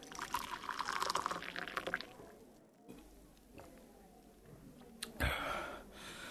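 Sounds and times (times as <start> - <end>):
water pouring into a glass: 0.0 - 2.3.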